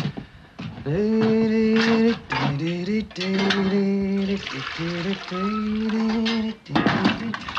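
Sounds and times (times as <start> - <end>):
man singing loudly: 0.9 - 7.5
running water while washing up dishes: 2.3 - 7.5.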